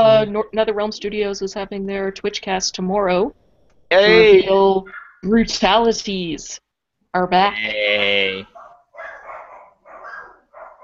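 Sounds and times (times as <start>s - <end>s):
speech: 0.2s - 8.5s
dogs barking: 4.8s - 5.2s, 8.4s - 10.8s.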